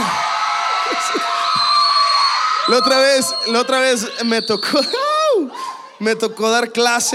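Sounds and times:
laughter: 0.0 - 1.7
higher whoops: 0.0 - 5.6
crowd shouting and cheering: 0.0 - 7.1
speech: 2.7 - 7.1.

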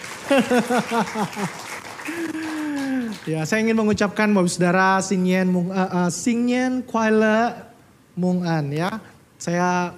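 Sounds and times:
audience applauding: 0.0 - 3.7
laughter: 0.2 - 3.0
speech: 0.3 - 9.9.

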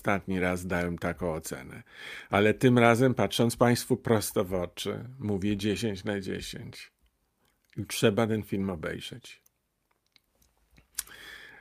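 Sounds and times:
speech: 0.0 - 7.0, 7.8 - 9.4
quiet mouth clicks and small wet sounds: 9.4 - 11.4.

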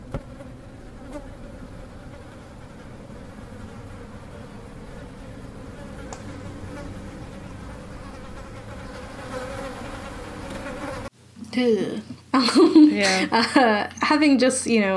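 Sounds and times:
creepy insect-like buzzing sound effect: 0.0 - 11.1
speech: 11.6 - 14.9
laughter: 12.4 - 13.9.

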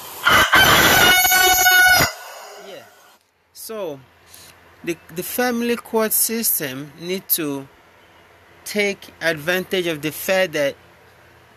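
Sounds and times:
rooster crowing: 0.2 - 3.1
speech: 4.8 - 7.8, 8.7 - 10.8.

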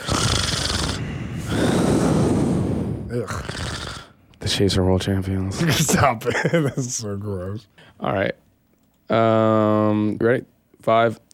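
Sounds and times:
heavy raspy breathing into a microphone: 0.0 - 4.2
speech: 4.5 - 8.4, 9.1 - 11.3.

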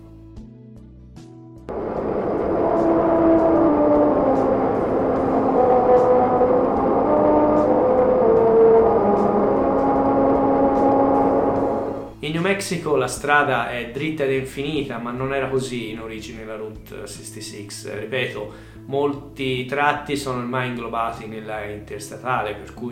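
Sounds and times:
car tires humming over musical road grooves: 1.7 - 12.2
speech: 12.6 - 22.8.

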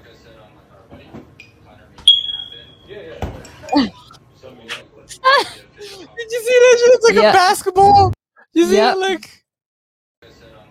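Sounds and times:
shrill electronic smoke detector beep in a kitchen: 2.1 - 2.9
speech: 3.8 - 4.0, 7.1 - 9.4.

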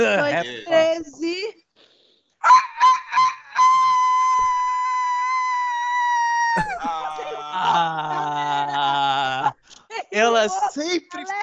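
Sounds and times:
laughter: 0.0 - 0.7, 6.5 - 9.6
speech: 0.0 - 1.6, 10.4 - 11.4
voice imitating a rooster crowing: 2.4 - 9.3.

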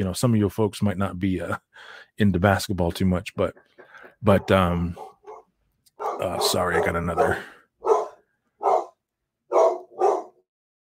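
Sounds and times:
speech: 0.0 - 5.1, 6.2 - 7.6
dog barking: 4.3 - 10.4.

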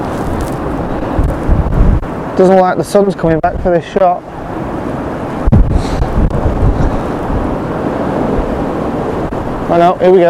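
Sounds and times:
sharp low thumps: 0.0 - 2.1, 5.4 - 7.0
strong wind gusting against the microphone: 0.0 - 10.2
speech: 2.4 - 4.4, 9.7 - 10.2.

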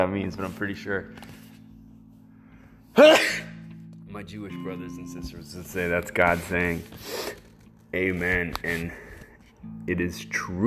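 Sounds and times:
speech: 0.0 - 1.4, 3.0 - 3.4, 4.1 - 10.6
human sneeze: 3.0 - 3.6.

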